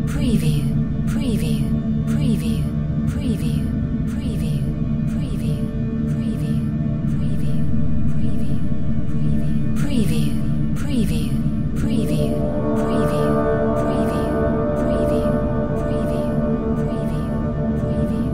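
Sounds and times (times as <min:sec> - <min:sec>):
brass drone generator: 0:00.1 - 0:18.3.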